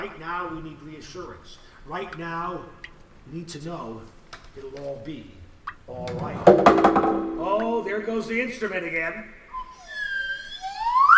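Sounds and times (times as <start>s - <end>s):
speech: 0.0s - 9.4s
whistle blowing: 9.5s - 11.1s.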